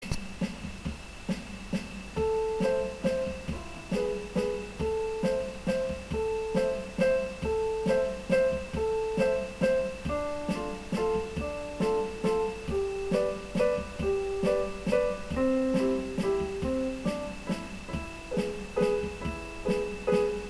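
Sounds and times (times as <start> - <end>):
Peruvian waltz music: 2.4 - 20.4.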